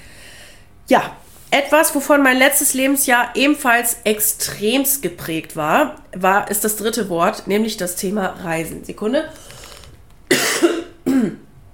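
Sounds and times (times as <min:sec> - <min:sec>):
speech: 0:00.9 - 0:09.5
person coughing harshly: 0:10.3 - 0:11.5.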